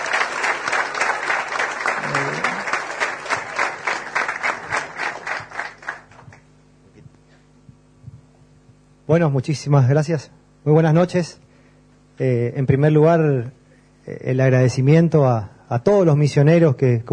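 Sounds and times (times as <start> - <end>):
crowd applauding: 0.0 - 6.4
faint low hum: 0.0 - 17.1
speech: 9.1 - 11.4, 12.2 - 17.1.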